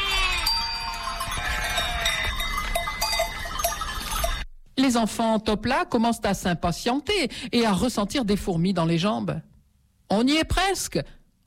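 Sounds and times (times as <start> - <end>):
lamb bleating at night: 0.0 - 0.6, 1.2 - 2.3
sheep bell tinkling: 0.0 - 4.6
speech: 4.8 - 9.5, 10.1 - 11.2.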